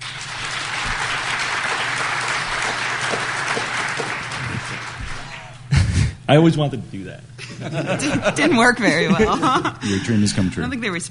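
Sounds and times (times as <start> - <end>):
crowd clapping: 0.0 - 5.6
laughter: 4.0 - 6.1, 7.4 - 10.4
speech: 6.3 - 11.1.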